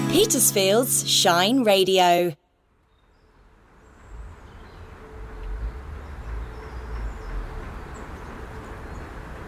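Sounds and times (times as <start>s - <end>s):
speech: 0.1s - 2.4s
train passing through a deserted abandoned station: 3.3s - 9.4s.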